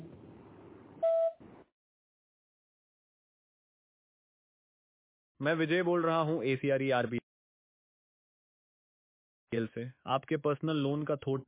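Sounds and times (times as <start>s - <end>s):
voicemail recording electronic beep: 1.0s - 1.4s
speech: 5.4s - 7.3s, 9.5s - 11.4s.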